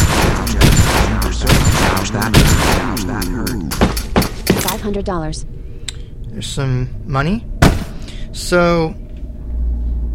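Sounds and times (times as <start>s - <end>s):
Desert Eagle pistol gunshots from a video game: 0.0s - 4.7s
dense continuous rumble: 0.0s - 10.1s
speech: 4.8s - 5.7s, 6.4s - 7.5s, 8.4s - 9.0s.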